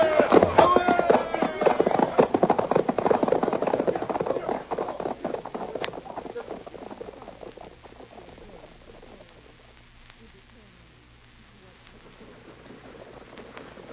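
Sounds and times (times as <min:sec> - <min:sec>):
horses galloping hoofbeats: 0:00.0 - 0:09.7, 0:11.6 - 0:13.9.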